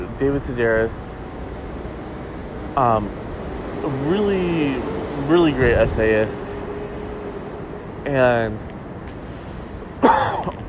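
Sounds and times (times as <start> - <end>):
speech: 0.2 - 1.2, 2.8 - 3.2, 3.8 - 6.6, 8.0 - 9.2
man coughing: 10.0 - 10.6.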